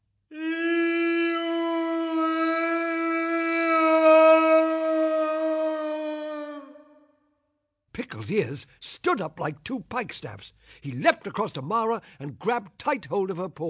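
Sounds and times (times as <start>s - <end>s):
long sustained echoing howl: 0.4s - 7.1s
speech: 8.2s - 13.6s.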